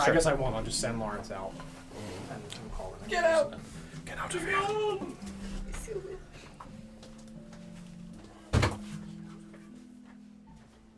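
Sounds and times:
speech: 0.0 - 5.3
door shutting: 8.5 - 8.9.

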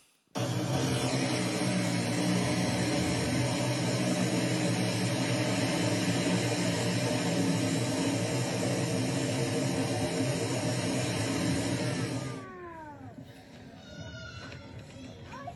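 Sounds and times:
parcel-delivery drone flying overhead with rotor whine: 0.4 - 13.0.

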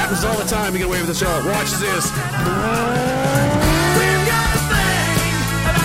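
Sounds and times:
speech: 0.1 - 3.7
big truck full of bricks revving its engine: 1.1 - 5.6
tires squealing: 2.1 - 4.7.

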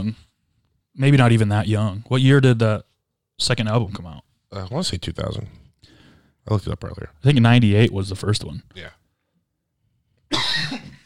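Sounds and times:
speech: 0.0 - 0.3, 1.0 - 5.6, 6.4 - 9.0
person coughing: 10.3 - 11.0.

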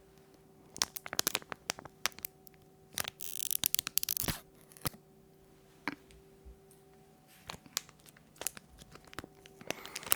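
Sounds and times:
scissors snipping packaging: 0.7 - 5.0, 7.5 - 10.1.

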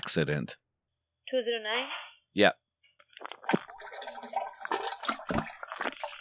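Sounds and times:
speech: 0.1 - 0.6, 1.3 - 2.6, 3.2 - 4.0
toilet flushing: 3.4 - 6.2.

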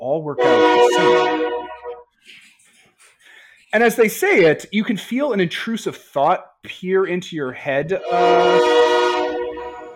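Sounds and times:
speech: 0.1 - 1.6, 3.7 - 8.8
train horn chord-like blast: 0.4 - 2.0, 8.0 - 9.9.

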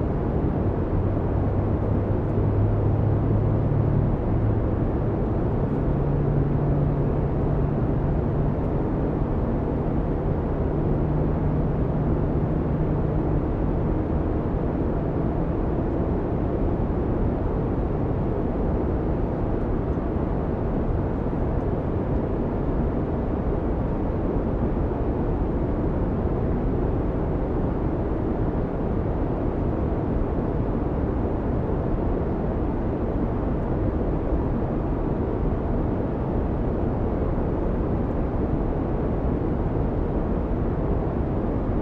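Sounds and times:
dense low roar in an airplane cabin at 40,000 feet: 0.0 - 41.8.

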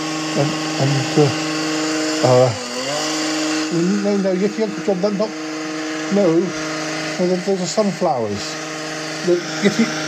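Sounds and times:
chainsaw running for gardening work in a garden: 0.0 - 10.0
speech: 0.4 - 1.5, 2.2 - 2.6, 3.7 - 5.4, 6.1 - 8.6, 9.2 - 10.0.

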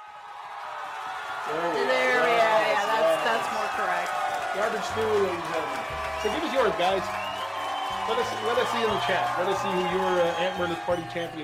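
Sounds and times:
crowd cheering and shouting: 0.0 - 11.4
speech: 1.5 - 2.0, 4.6 - 7.3, 7.9 - 11.4.

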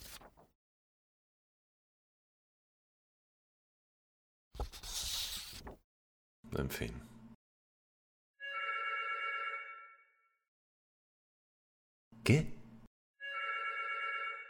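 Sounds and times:
speech: 6.5 - 7.1, 12.3 - 12.6
telephone ringing: 8.4 - 10.2, 13.2 - 14.4.

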